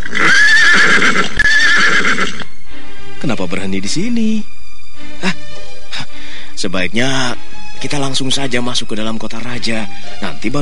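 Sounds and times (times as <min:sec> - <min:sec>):
horses neighing: 0:00.0 - 0:02.5
speech: 0:03.3 - 0:04.4, 0:06.7 - 0:10.5.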